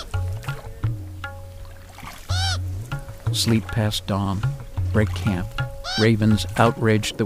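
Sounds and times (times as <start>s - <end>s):
oars rowing a loaded boat along a river through a deep canyon: 0.0s - 7.2s
sharp squeaky creak of a rowing boat: 2.3s - 2.6s, 5.8s - 6.1s
speech: 3.3s - 7.2s.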